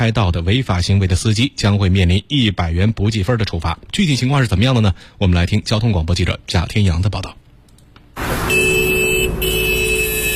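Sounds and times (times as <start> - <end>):
speech: 0.0 - 7.4
road traffic rumble at the Huangzhuang intersection beside Haidian Hospital in Beijing: 8.1 - 10.3
black Hyundai sedan horn blasts at the Huangzhuang intersection in Beijing: 8.4 - 10.3.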